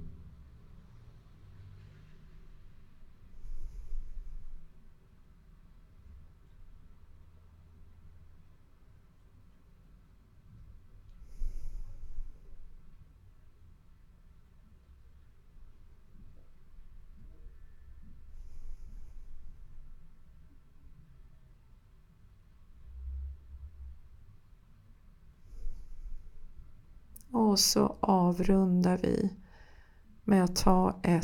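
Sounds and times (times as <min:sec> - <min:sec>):
low steady rumble: 0:00.0 - 0:09.4, 0:10.0 - 0:31.2
slow deep breathing during a breathing exercise: 0:03.2 - 0:04.8, 0:11.1 - 0:13.0, 0:17.2 - 0:20.4, 0:25.3 - 0:27.3, 0:29.4 - 0:30.2
speech: 0:27.6 - 0:29.4, 0:30.3 - 0:31.2.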